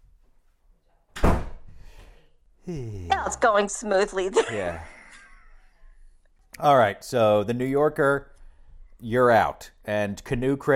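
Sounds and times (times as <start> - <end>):
door shutting with a solid thud and rattling latch: 1.1 - 1.7
speech: 2.7 - 4.9, 6.6 - 8.3, 9.0 - 10.7.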